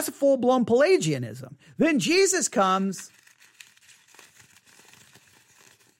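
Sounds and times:
speech: 0.0 - 3.2
clean sheet of paper being wadded up: 2.9 - 5.9.

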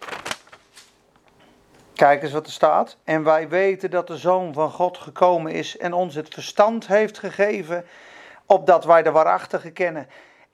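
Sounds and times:
book page being turned: 0.0 - 2.0
speech: 2.0 - 10.3.

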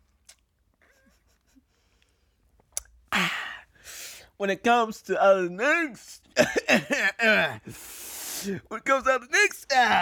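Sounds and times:
soft wet mouth clicks: 0.0 - 0.6, 2.6 - 3.0
speech: 4.4 - 9.9.

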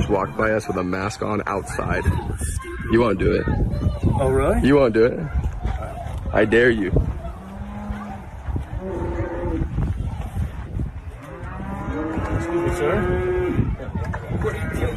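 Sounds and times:
busy outdoor din: 0.0 - 14.9
speech: 0.1 - 5.5, 6.3 - 7.1
farm animals at a petting zoo lowing: 7.0 - 10.0, 11.0 - 13.9.

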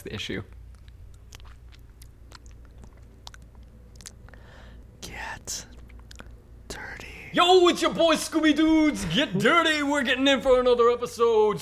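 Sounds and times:
speech: 0.0 - 0.6, 7.3 - 11.6
person wetting their lips with wet mouth smacking and lip clicks: 0.8 - 8.5.

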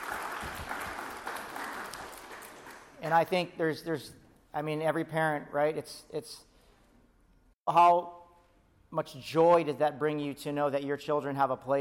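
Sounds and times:
crowd of people applauding: 0.0 - 3.1
speech: 3.0 - 6.5, 7.7 - 8.2, 8.9 - 11.8.

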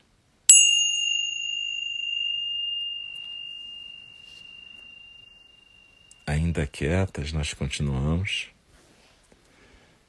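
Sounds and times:
meditation bell ringing: 0.5 - 6.6
speech: 6.3 - 8.6.

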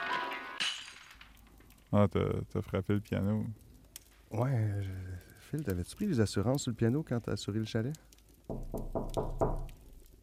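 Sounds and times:
speech: 1.9 - 3.6, 4.3 - 9.0
firm knocking on a door: 8.5 - 9.8.

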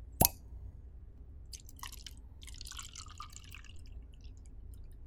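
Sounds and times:
cork popping out of a bottle of very dark wine: 0.2 - 0.4
wine gurgling and splashing as it is poured into a glass: 1.6 - 4.9.

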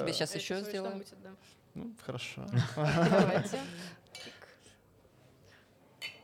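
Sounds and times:
speech: 0.0 - 4.4
people laughing: 2.5 - 4.0
glasses clinking in a toast: 6.0 - 6.2.

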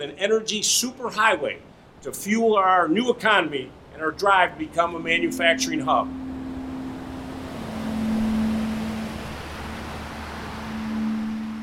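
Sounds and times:
speech: 0.0 - 6.2
fast-flowing river rapids rushing: 3.2 - 11.6
low droning hum: 3.7 - 11.6.

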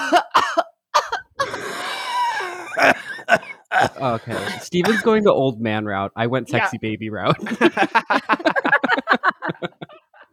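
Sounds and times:
two people coughing in exaggerated raspy wheezy coughs: 0.0 - 5.2
speech: 0.1 - 0.7, 4.0 - 8.5
laughter: 1.4 - 5.3, 6.5 - 10.3.

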